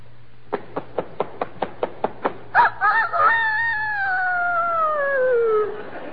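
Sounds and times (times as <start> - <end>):
year-old rooster crowing: 2.6 - 5.7.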